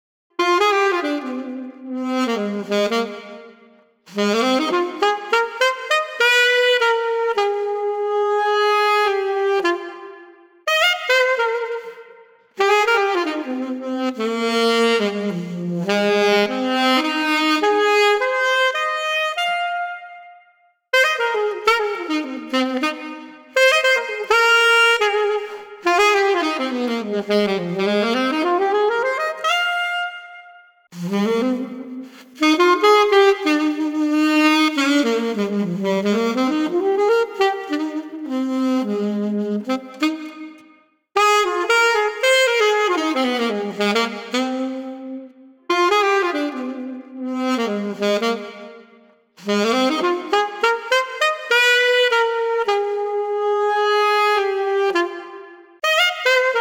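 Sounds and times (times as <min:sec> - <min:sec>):
cool saxophone riffs: 0:00.4 - 0:56.5.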